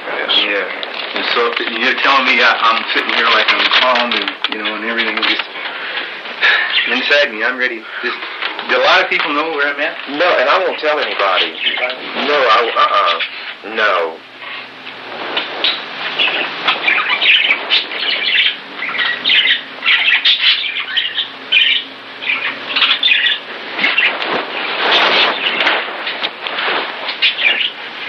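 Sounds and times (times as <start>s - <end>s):
speech: 0.5s - 5.6s, 6.4s - 14.3s
pet birds squawking and screeching: 3.4s - 9.5s, 10.4s - 28.0s
pet bird chirps: 15.6s - 25.7s, 27.1s - 27.8s.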